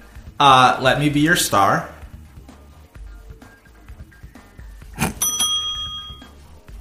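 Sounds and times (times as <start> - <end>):
speech: 0.4 - 2.0
bright bell-like quiz correct-answer chime: 5.2 - 6.4.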